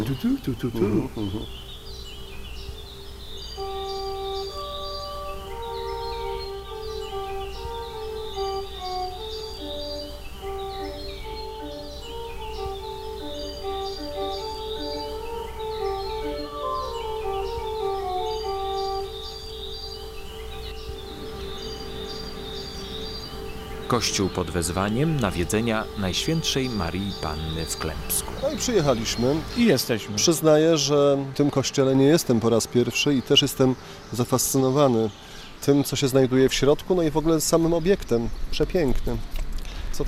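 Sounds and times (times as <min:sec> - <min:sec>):
soft tonal sounds: 0:00.0 - 0:30.4
low constant hum: 0:00.0 - 0:39.8
common blackbird singing near a church, about 100 metres from a forest: 0:00.0 - 0:40.0
speech: 0:00.1 - 0:01.7, 0:23.9 - 0:40.0.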